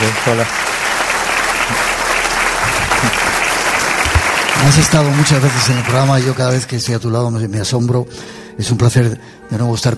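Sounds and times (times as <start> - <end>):
studio audience applause: 0.0 - 6.9
speech: 0.2 - 0.7, 4.6 - 9.9.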